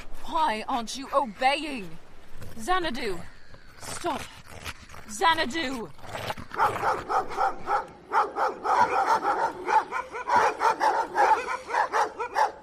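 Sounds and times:
speech: 0.3s - 4.4s, 5.1s - 11.6s
several dogs barking and yipping: 6.4s - 12.6s.

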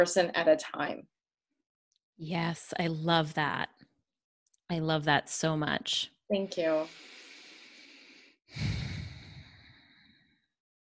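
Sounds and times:
speech: 0.0s - 1.2s, 2.2s - 3.8s, 4.7s - 7.2s, 8.5s - 8.8s
person taking a deep breath and sighing: 6.8s - 10.5s.

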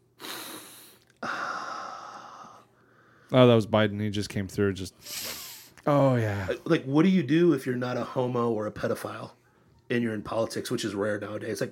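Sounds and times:
long loud nasal sniff: 0.1s - 2.5s, 5.0s - 5.8s
speech: 3.3s - 11.7s.

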